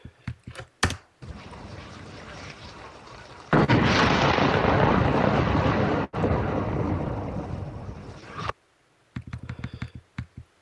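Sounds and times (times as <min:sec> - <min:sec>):
AI-generated large explosions: 0:01.2 - 0:08.6.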